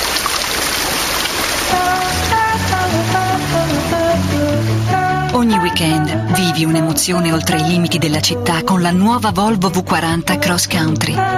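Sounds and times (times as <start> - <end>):
river flowing beside a wood: 0.0 - 7.1
music: 1.7 - 11.3
speech: 5.6 - 11.3.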